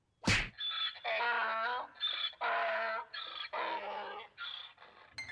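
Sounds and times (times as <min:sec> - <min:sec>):
sharp punch thwack on a donkey: 0:00.2 - 0:00.5
donkey braying: 0:00.6 - 0:05.2.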